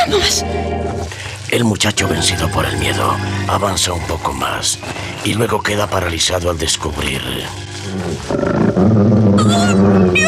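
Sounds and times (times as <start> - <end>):
speech: 0.0 - 10.2
giant wolf growling and snarling: 7.6 - 10.2.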